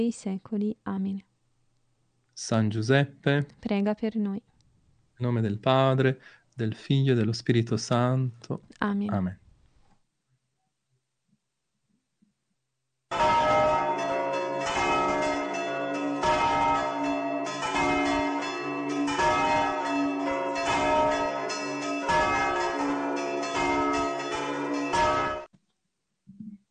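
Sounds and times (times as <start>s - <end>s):
speech: 0.0s - 1.3s, 2.4s - 4.5s, 5.2s - 9.4s
Easter church bells ringing in a full peal: 13.1s - 25.5s.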